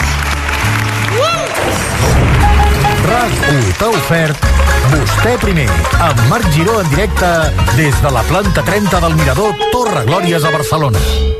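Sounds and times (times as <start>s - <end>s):
audience applause at a live radio show on a tower floor in Barcelona: 0.0s - 6.5s
speech: 3.1s - 11.3s.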